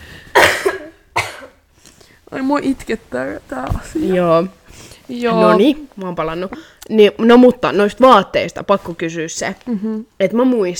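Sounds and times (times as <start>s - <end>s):
person coughing: 0.3s - 1.6s
speech: 2.3s - 10.7s.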